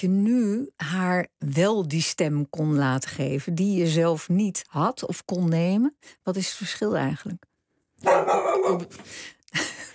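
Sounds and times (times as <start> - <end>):
speech: 0.0 - 9.8
dog barking in a radio studio: 8.0 - 9.0.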